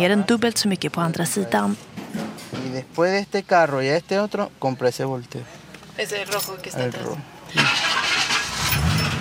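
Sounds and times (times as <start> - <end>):
speech: 0.0 - 2.0, 2.8 - 7.8
old American car engine cranking and starting at an abandoned warehouse in Venezuela: 7.5 - 9.2.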